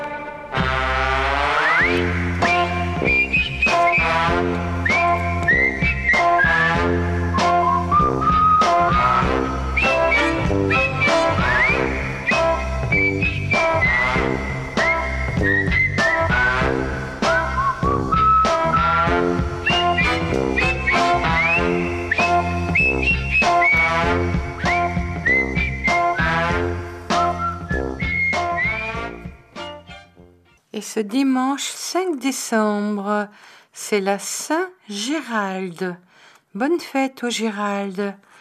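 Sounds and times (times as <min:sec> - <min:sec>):
band accompaniment: 0:00.0 - 0:30.0
whistled melody: 0:01.4 - 0:30.0
speech: 0:01.8 - 0:02.4, 0:30.9 - 0:38.3.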